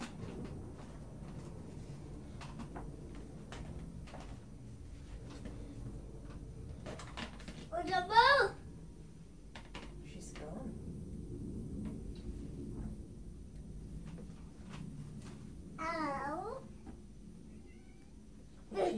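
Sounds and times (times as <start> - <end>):
low rumble: 0.0 - 18.9
old female cat meowing: 17.5 - 18.2.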